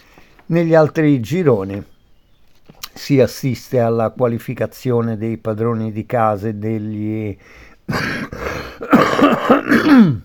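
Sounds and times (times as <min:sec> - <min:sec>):
speech: 0:00.5 - 0:01.9, 0:03.0 - 0:10.2
rough throat clearing and coughing: 0:07.9 - 0:10.2.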